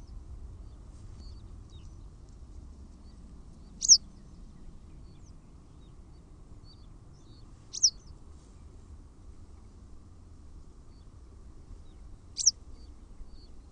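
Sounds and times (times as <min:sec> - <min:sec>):
low background noise: 0:00.0 - 0:13.6
Western Yellow Wagtail high thin slurred calls: 0:03.8 - 0:04.0, 0:07.7 - 0:08.1, 0:12.4 - 0:12.6.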